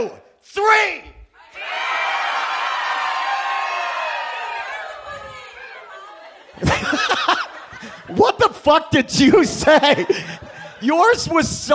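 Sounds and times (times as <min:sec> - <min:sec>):
speech: 0:00.0 - 0:02.0, 0:06.6 - 0:11.7
audience cheering and whooping: 0:01.4 - 0:08.2
laughter: 0:04.3 - 0:11.7.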